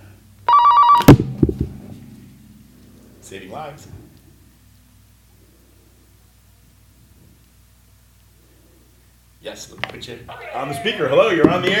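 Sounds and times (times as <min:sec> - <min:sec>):
telephone ringing with an incoming call: 0:00.5 - 0:01.2
speech: 0:03.3 - 0:04.0, 0:09.5 - 0:11.7.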